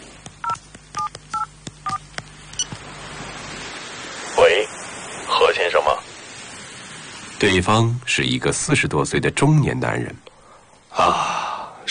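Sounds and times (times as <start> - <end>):
low hum: 0.0 - 11.9
mobile phone keypad tones: 0.4 - 2.8
speech: 7.4 - 10.3.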